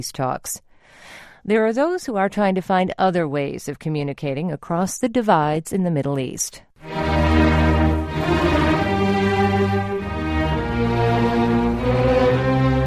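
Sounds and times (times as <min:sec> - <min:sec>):
speech: 0:00.0 - 0:07.5
symphony orchestra playing a classical piece: 0:06.8 - 0:12.8.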